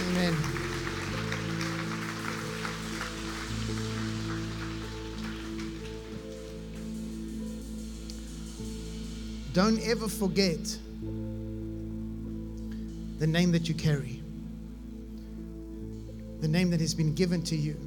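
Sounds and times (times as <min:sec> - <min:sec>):
church audience applause at a morning service: 0:00.0 - 0:06.6
sustained keyboard or organ chords: 0:00.0 - 0:17.8
speech: 0:09.6 - 0:10.8, 0:13.2 - 0:14.2, 0:16.4 - 0:17.8.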